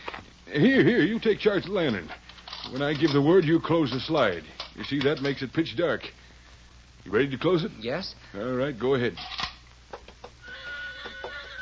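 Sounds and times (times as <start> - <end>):
speech: 0.5 - 6.2, 7.0 - 9.4
horse whinnying: 10.4 - 11.5.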